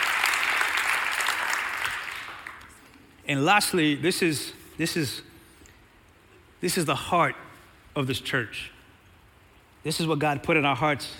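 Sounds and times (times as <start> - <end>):
church congregation applauding and cheering: 0.0 - 2.8
speech: 3.3 - 5.3, 6.6 - 8.8, 9.8 - 11.1.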